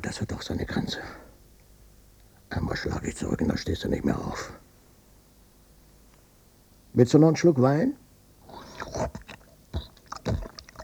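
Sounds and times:
speech: 0.0s - 1.2s, 2.5s - 4.6s, 7.0s - 8.0s
noisy chewing of fatty pork belly: 8.4s - 10.8s.

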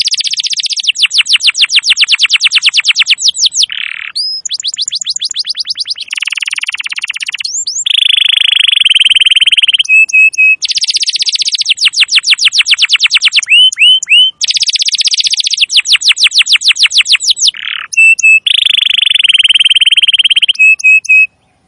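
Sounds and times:
canary song of buzzy trills, sweeping runs and whistled notes: 0.0s - 21.6s.

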